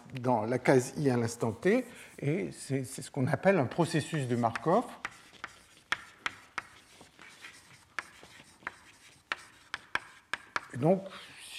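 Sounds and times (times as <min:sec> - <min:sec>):
speech: 0:00.1 - 0:05.2, 0:10.8 - 0:11.5
equation being written by hand during a physics lecture: 0:03.7 - 0:10.8.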